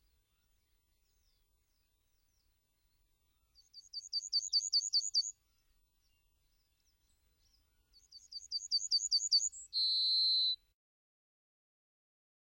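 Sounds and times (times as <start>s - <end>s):
Yellowhammer singing fast repeated high notes: 0.0s - 5.4s, 6.0s - 10.6s.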